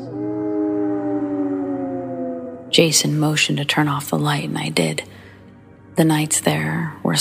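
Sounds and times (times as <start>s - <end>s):
distant howling in the woods: 0.0s - 4.0s
speech: 2.8s - 5.2s, 6.0s - 7.1s.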